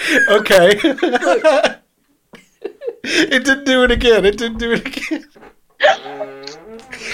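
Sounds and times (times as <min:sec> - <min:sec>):
laughter: 0:00.0 - 0:01.8, 0:04.8 - 0:07.1
speech: 0:00.1 - 0:01.8, 0:03.1 - 0:06.4
fart: 0:05.8 - 0:07.1.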